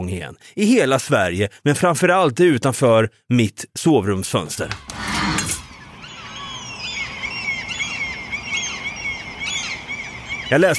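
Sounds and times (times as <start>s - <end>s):
speech: 0.0s - 5.5s, 10.5s - 10.7s
several seagulls calling in shrill overlapping cries: 5.6s - 10.7s.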